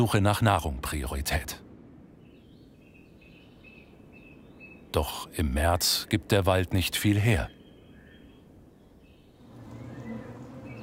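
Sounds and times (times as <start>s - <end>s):
speech: 0.0s - 1.6s, 4.9s - 7.6s
honeybees buzzing: 9.4s - 10.8s.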